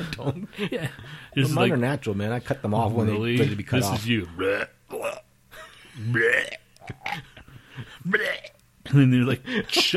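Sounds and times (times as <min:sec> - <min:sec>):
speech: 0:00.2 - 0:05.2, 0:06.0 - 0:09.9
loud drawn-out burp: 0:04.4 - 0:05.3, 0:06.0 - 0:07.3, 0:08.1 - 0:08.6.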